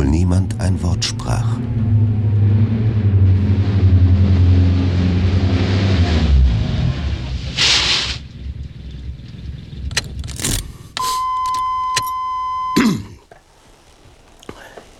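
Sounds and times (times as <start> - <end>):
rush of noise: 0.0 - 10.0
car engine droning on a drive from Los Angeles to Pasadena: 0.0 - 13.0.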